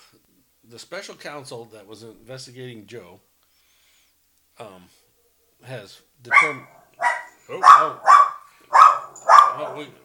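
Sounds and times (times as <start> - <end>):
speech: 0.1 - 3.3, 4.6 - 5.0, 5.6 - 6.8, 7.5 - 8.2, 9.2 - 10.0
dog barking outside: 6.3 - 10.0.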